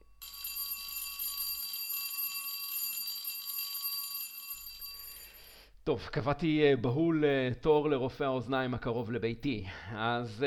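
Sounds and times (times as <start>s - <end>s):
electric school bell ringing: 0.0s - 5.6s
speech: 5.8s - 10.4s.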